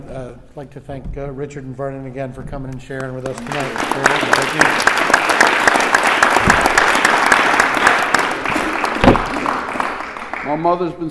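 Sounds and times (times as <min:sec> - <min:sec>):
speech: 0:00.1 - 0:05.0, 0:10.4 - 0:11.0
room full of people clapping: 0:03.1 - 0:11.0.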